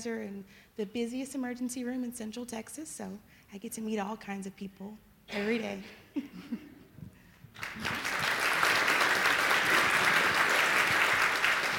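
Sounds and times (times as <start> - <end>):
speech: 0.0 - 6.7
audience applause at a show: 7.6 - 11.7.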